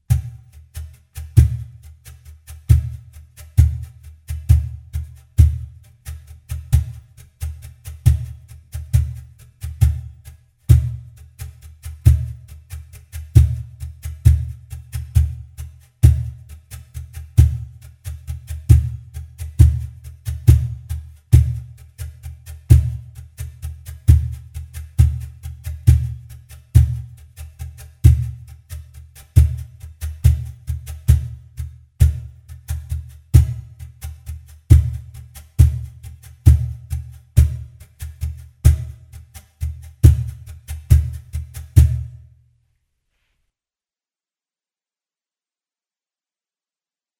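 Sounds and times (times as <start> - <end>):
cajon drumming: 0.0 - 42.2.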